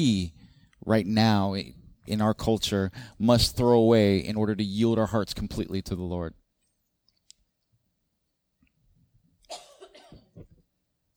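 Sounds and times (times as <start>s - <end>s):
speech: 0.0s - 6.4s
person with a cold coughing: 9.5s - 10.5s.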